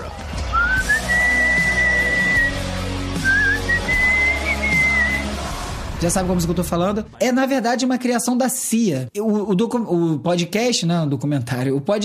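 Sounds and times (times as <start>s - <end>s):
whistled intro melody of a rock hit: 0.4s - 5.4s
speech: 6.0s - 12.0s.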